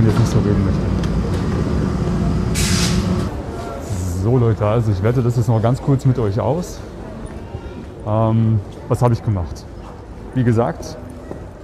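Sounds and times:
speech: 0.0 - 1.0, 4.2 - 7.0, 8.0 - 9.7, 10.3 - 11.0
subway train rolling into the station: 0.0 - 5.1
subway train air brakes hissing: 2.1 - 3.4.

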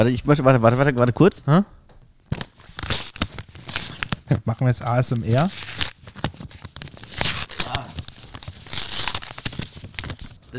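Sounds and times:
speech: 0.0 - 2.4, 4.4 - 5.8
paper envelope torn open by hand: 2.3 - 4.2, 5.1 - 10.4.

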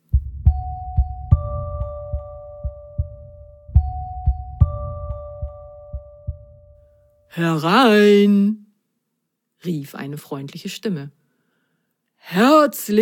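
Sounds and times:
loud heartbeat thumping as a doorbell: 0.0 - 6.8
two sustained chime-like doorbell tones: 0.5 - 6.6
speech: 7.4 - 8.6, 9.6 - 11.2, 12.2 - 12.9.

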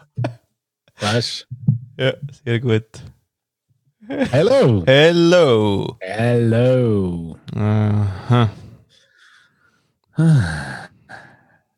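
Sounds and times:
speech: 1.1 - 3.1, 4.1 - 8.6, 10.2 - 10.8
faint airy breathing: 8.5 - 10.0.

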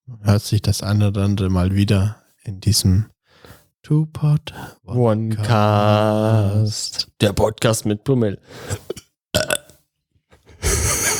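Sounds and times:
speech: 0.1 - 3.2, 3.8 - 9.6
person belching on command: 9.4 - 9.7
laughter: 10.4 - 11.1.

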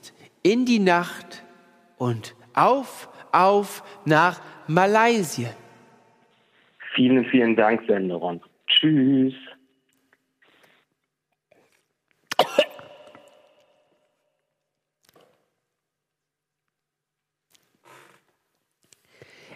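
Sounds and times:
speech: 0.0 - 1.3, 2.0 - 5.6, 7.0 - 9.5
harsh cough: 12.3 - 13.1.

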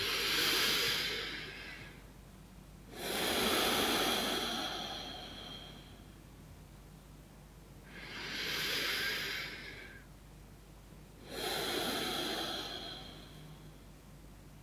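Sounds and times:
slow deep breaths drawn in and let out: 0.0 - 2.1, 2.9 - 6.3, 7.8 - 10.1, 11.2 - 14.0.

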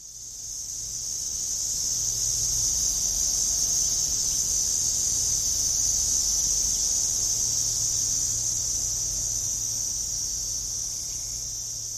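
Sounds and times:
cicadas buzzing across the landscape: 0.5 - 11.9.

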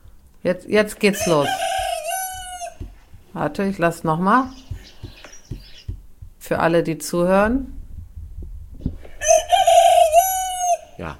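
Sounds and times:
speech: 0.4 - 1.7, 3.4 - 4.6, 6.5 - 7.8
rooster crowing: 1.2 - 3.0, 9.2 - 11.0
faint knock: 1.7 - 3.4, 4.4 - 6.4.

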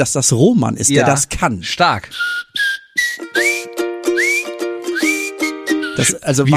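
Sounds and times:
speech: 0.0 - 2.7, 6.0 - 6.5
high piercing whistle-like tone swooping upward: 2.2 - 6.2.

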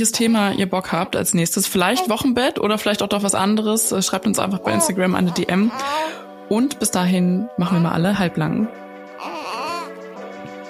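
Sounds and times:
speech: 0.0 - 9.3
baby crying and whimpering: 4.6 - 6.3, 9.2 - 10.0.

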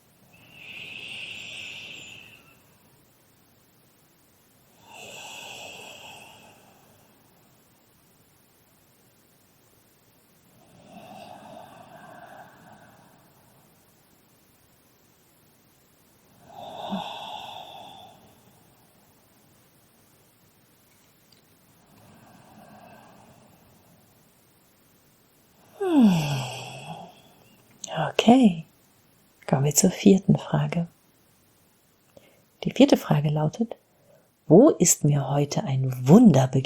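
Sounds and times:
slow deep breathing during a guided gratitude meditation: 0.3 - 2.8, 4.8 - 7.4, 10.6 - 13.9, 16.3 - 19.3, 21.8 - 24.2, 25.6 - 27.5
speech: 28.2 - 28.6, 29.5 - 31.0, 32.7 - 33.8, 34.5 - 36.6.

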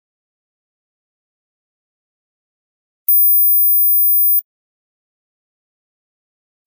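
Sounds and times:
high-pitched smartphone ringtone inaudible to adults: 3.1 - 4.4.

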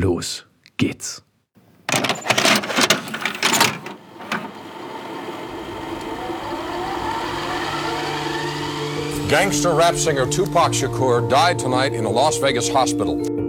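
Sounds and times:
speech: 0.0 - 1.3, 9.3 - 13.4
cassette inserted into a tape deck with plastic clicks and clunks: 1.9 - 9.3.

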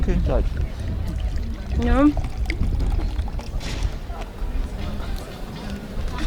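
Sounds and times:
speech: 0.0 - 3.2
faint murmuring voices: 0.0 - 6.2
woodruff-flavoured Brause fizzy drink pouring and fizzing: 0.4 - 4.0.

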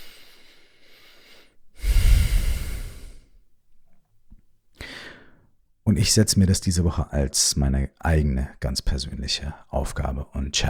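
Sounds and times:
deep breath in and out: 0.0 - 3.4, 4.8 - 5.5
speech: 5.9 - 10.6.

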